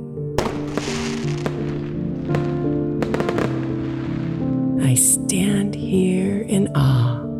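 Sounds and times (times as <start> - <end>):
fireworks popping and crackling: 0.4 - 4.7
speech: 2.3 - 2.9, 5.0 - 7.2.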